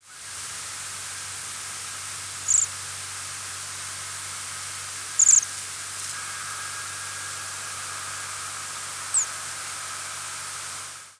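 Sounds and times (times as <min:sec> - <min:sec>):
background hiss: 0:00.0 - 0:11.1
Bohemian waxwing giving very high thin calls: 0:02.4 - 0:02.7, 0:05.1 - 0:11.1.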